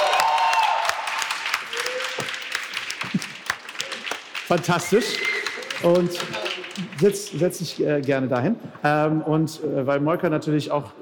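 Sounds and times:
crowd applauding: 0.0 - 7.8
speech: 4.5 - 11.0.

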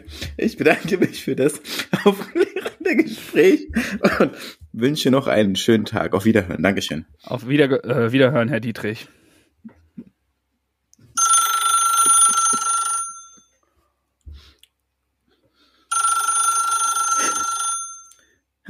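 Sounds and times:
speech: 0.0 - 9.2
laughter: 0.6 - 4.5
telephone ringing: 11.2 - 13.6, 15.9 - 18.3.

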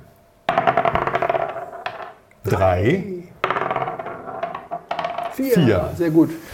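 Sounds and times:
dice clattering across a hard tabletop: 0.5 - 2.6, 3.4 - 5.5
speech: 2.5 - 3.3, 5.4 - 6.5.

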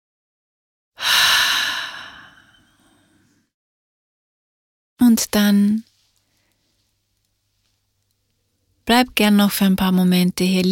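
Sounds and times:
person exhaling deeply during yoga practice: 1.0 - 3.3
speech: 5.1 - 5.9, 8.9 - 10.7.

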